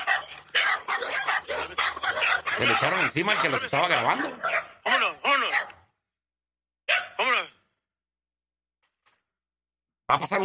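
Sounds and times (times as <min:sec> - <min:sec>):
several dogs barking: 0:00.0 - 0:06.0, 0:06.9 - 0:07.4
speech: 0:02.6 - 0:04.5, 0:10.1 - 0:10.4.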